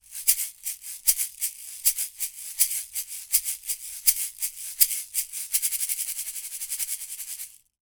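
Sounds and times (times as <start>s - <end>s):
shaker recorded with an Audio-Technica AT2020 microphone: 0.0s - 7.7s.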